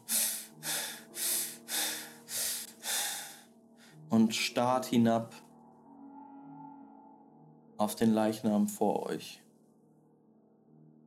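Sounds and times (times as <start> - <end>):
heavy breathing: 0.0 - 4.0
speech: 4.1 - 5.4, 7.8 - 9.4.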